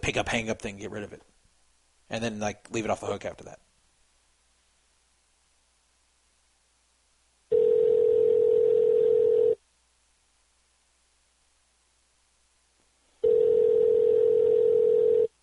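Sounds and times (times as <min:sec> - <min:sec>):
speech: 0:00.0 - 0:01.3, 0:02.1 - 0:03.6
buzzy telephone ringback tone: 0:07.5 - 0:09.6, 0:13.2 - 0:15.3.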